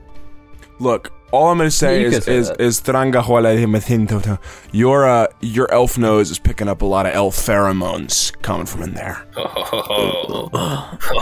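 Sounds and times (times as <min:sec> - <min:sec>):
speech: 0:00.8 - 0:11.2
loud gravelly throaty burp: 0:09.3 - 0:11.2.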